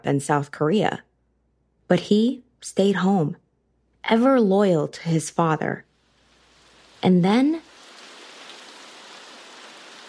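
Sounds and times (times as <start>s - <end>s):
speech: 0.0s - 1.1s, 1.9s - 3.4s, 4.0s - 5.9s, 7.0s - 7.7s
heavy rain downpour: 6.5s - 10.0s.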